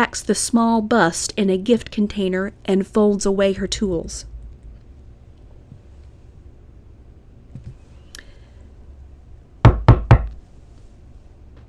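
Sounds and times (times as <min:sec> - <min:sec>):
speech: 0:00.1 - 0:04.3
firm knocking on a wooden front door: 0:09.6 - 0:10.4.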